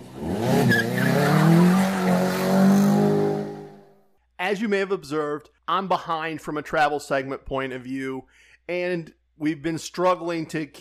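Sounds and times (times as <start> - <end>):
car tires squealing: 0.2 - 3.7
speech: 4.5 - 10.7.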